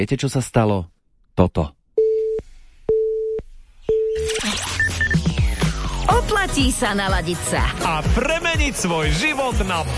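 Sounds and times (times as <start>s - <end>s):
speech: 0.0s - 1.8s, 6.1s - 9.9s
telephone busy signal beeps: 2.0s - 5.2s.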